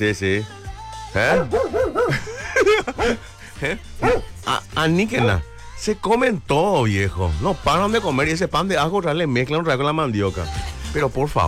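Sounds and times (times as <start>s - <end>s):
speech: 0.0s - 11.4s
dogs barking and yelping: 1.3s - 2.2s, 2.9s - 3.2s, 4.0s - 4.4s
laughter: 1.7s - 3.9s.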